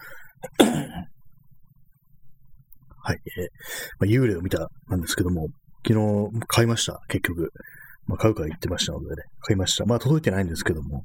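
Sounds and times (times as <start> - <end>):
person coughing after eating: 0.4 - 1.1
speech: 3.3 - 11.0.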